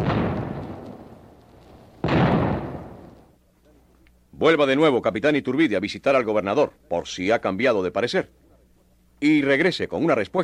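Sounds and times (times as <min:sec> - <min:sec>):
warning gunshots: 0:00.0 - 0:01.4, 0:02.0 - 0:03.3
speech: 0:04.4 - 0:08.4, 0:09.2 - 0:10.4.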